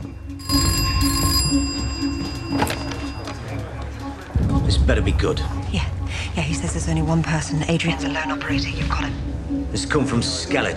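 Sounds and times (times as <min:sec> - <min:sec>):
office telephone ringing with electronic tone: 0:00.0 - 0:04.2
speech: 0:04.9 - 0:10.7.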